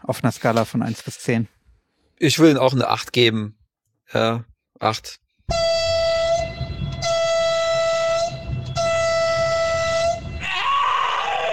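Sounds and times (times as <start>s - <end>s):
speech: 0.1s - 1.6s, 2.2s - 5.8s
deep train-style horn blasts: 5.5s - 10.5s
noisy rumble: 5.5s - 10.8s.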